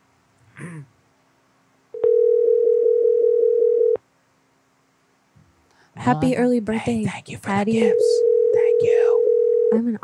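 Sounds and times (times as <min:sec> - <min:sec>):
phone line ringing on the other end: 0:02.0 - 0:04.0, 0:07.9 - 0:09.8
speech: 0:06.1 - 0:09.0, 0:09.7 - 0:10.0.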